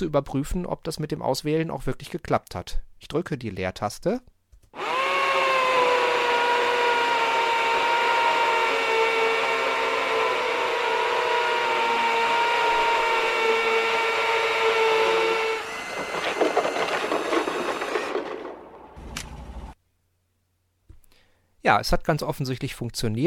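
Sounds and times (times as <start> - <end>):
speech: 0.0 - 4.8, 21.7 - 23.2
electric drill whining at high speed: 4.8 - 19.8
rougher grinding and clattering: 4.8 - 19.8.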